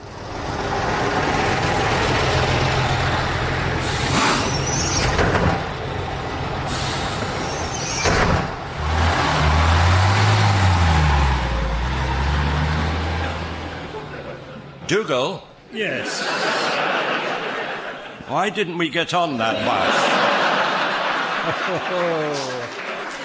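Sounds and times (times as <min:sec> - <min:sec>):
bus engine rumbling: 0:00.0 - 0:18.2
laughter: 0:13.1 - 0:14.9, 0:15.8 - 0:18.6, 0:19.3 - 0:23.2
speech: 0:14.9 - 0:16.8, 0:18.3 - 0:20.2, 0:21.5 - 0:22.8.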